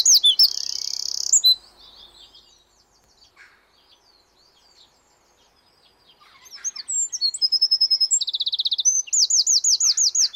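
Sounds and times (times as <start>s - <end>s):
Eurasian wren Troglodytes troglodytes trills and twitters: 0.0s - 10.3s.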